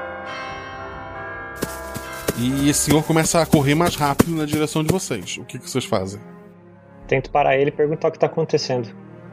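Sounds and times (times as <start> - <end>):
large church bell tolling in a giant tower: 0.0 - 3.8
speech: 2.4 - 6.4, 7.1 - 9.1.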